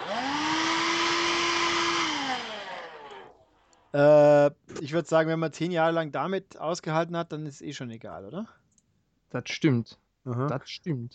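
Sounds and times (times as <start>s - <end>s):
Xbox 360 console cooling fan whirring: 0.0s - 3.6s
speech: 3.9s - 8.6s, 9.3s - 11.1s.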